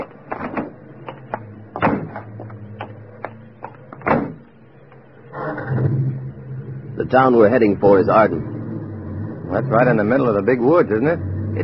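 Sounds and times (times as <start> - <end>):
clicks, clunks and rattling of gear thrown into a car: 0.0 - 4.5
low steady rumble: 0.0 - 11.6
car doors thudding shut: 1.7 - 2.4, 3.9 - 4.5
speech: 7.0 - 8.5, 9.5 - 11.6.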